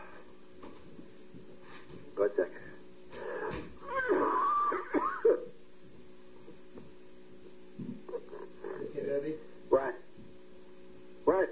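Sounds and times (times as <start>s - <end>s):
steady low electrical hum: 0.0s - 11.5s
person clearing throat: 4.7s - 5.5s
person coughing: 4.8s - 5.5s.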